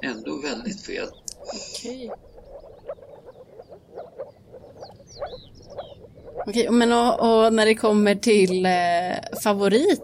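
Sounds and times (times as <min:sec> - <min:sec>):
speech: 0:00.0 - 0:02.3, 0:04.8 - 0:10.0
moor frog chorus calling: 0:00.0 - 0:10.0
higher chirps: 0:00.7 - 0:07.6.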